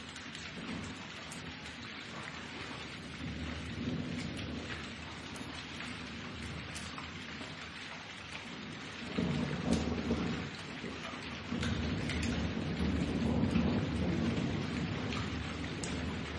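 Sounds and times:
dense outdoor thunderstorm rain hissing and pattering: 0.0s - 16.3s
outdoor thunderstorm thunder rumbling: 2.2s - 6.9s, 8.7s - 16.3s.

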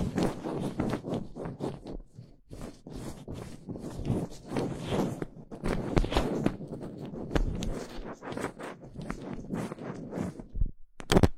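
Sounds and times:
fingers scratching and rubbing directly on a microphone: 0.0s - 11.3s.

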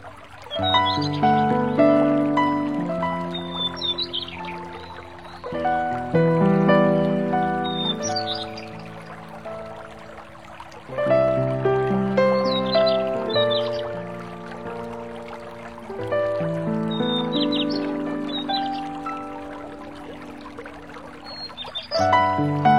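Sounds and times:
gentle piano playing slow ringing phrases: 0.0s - 22.7s
soft steady hush: 0.0s - 22.7s
crisp bright bird chirps: 0.4s - 1.4s, 3.2s - 5.6s, 7.6s - 9.2s, 16.9s - 19.8s, 21.2s - 22.2s.

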